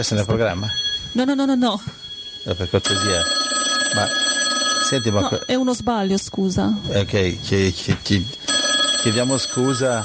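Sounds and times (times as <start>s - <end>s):
speech: 0.0s - 4.3s, 4.9s - 8.4s, 9.0s - 10.0s
telephone ringing with an electronic tone: 0.0s - 6.2s, 8.2s - 10.0s.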